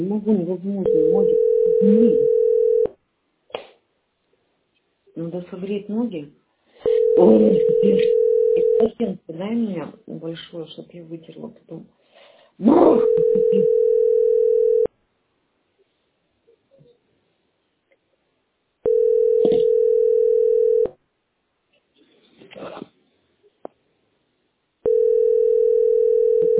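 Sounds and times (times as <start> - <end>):
speech: 0.0 - 2.4, 5.2 - 12.0, 12.6 - 13.8
telephone tone heard while placing a call: 0.8 - 2.9, 6.9 - 8.9, 13.0 - 14.9, 18.9 - 20.9, 24.9 - 26.5.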